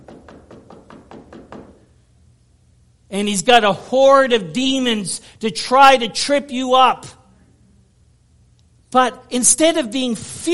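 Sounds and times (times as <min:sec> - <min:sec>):
rapid knocking on a door: 0:00.0 - 0:01.9
speech: 0:03.1 - 0:07.2, 0:08.9 - 0:10.5.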